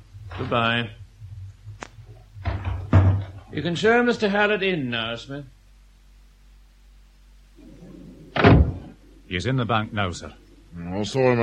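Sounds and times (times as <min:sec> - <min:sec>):
low steady hum: 0:00.0 - 0:11.4
speech: 0:00.4 - 0:01.0, 0:03.5 - 0:05.6, 0:09.3 - 0:11.4
door creaking and rustling as it closes: 0:02.4 - 0:03.4, 0:08.3 - 0:09.0.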